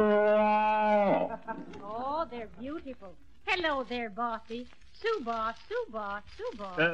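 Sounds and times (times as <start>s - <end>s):
cow mooing: 0.0s - 1.4s
speech: 1.5s - 6.9s.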